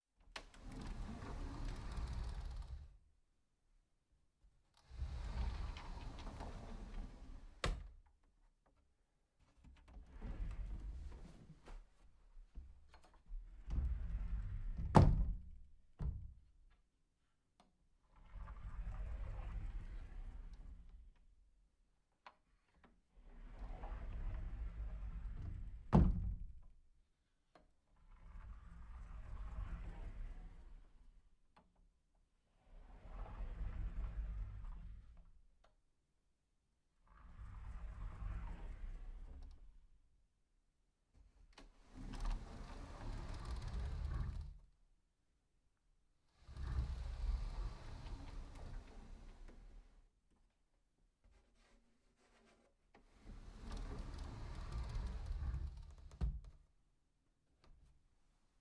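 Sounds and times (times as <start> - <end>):
sliding closet door: 0.4 - 3.0, 4.8 - 8.0, 9.9 - 11.9, 13.4 - 16.2, 18.2 - 20.9, 23.3 - 26.6, 28.2 - 31.0, 32.7 - 35.2, 37.1 - 39.8, 41.6 - 44.7, 46.4 - 50.1, 52.4 - 56.6.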